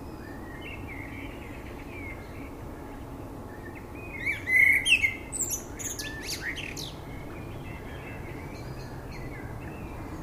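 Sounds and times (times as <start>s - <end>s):
common blackbird Turdus merula singing: 0.0s - 10.2s.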